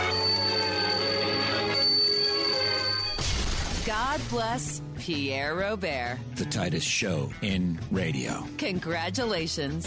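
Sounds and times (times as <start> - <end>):
luncheon bell ringing to announce luncheon: 0.1 - 3.2
speech: 4.2 - 9.8.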